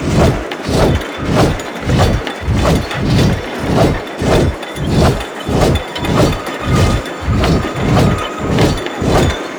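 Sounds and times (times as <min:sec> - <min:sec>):
turbine hum in a forest cave: 0:00.0 - 0:09.5.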